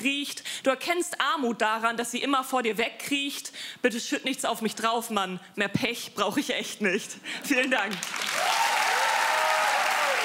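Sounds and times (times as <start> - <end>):
speech: 0.0 - 8.5
large audience applause: 7.9 - 10.2.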